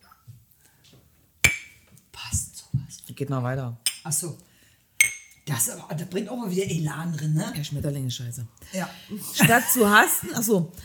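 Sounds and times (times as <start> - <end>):
glasses clinking in a toast: 1.4 - 1.8, 5.0 - 5.4
speech: 3.2 - 4.5, 5.5 - 10.8.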